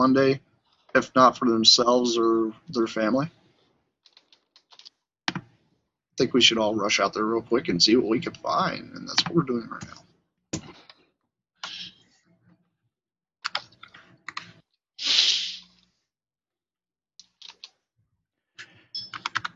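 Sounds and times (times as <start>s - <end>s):
speech: 0.0s - 3.4s, 6.2s - 10.0s
several people typing on computer keyboards: 4.0s - 5.5s, 13.4s - 14.5s, 17.2s - 17.8s, 19.0s - 19.5s.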